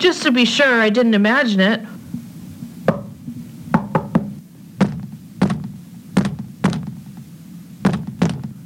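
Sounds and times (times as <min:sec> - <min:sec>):
speech: 0:00.0 - 0:02.0
low steady hum: 0:00.0 - 0:08.6
sharp knocks on a wall: 0:02.9 - 0:07.0, 0:07.8 - 0:08.6.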